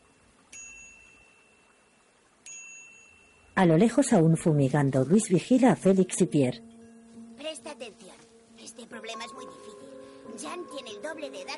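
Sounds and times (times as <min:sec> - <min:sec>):
handlebar bicycle bell rung by hand: 0:00.5 - 0:01.6, 0:02.5 - 0:03.6
speech: 0:03.6 - 0:06.7, 0:10.3 - 0:11.5.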